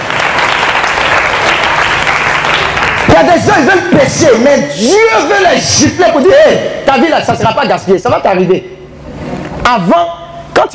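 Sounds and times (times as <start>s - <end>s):
church congregation applauding in acclaim of God: 0.0s - 4.3s
speech: 3.2s - 8.8s, 9.6s - 10.7s.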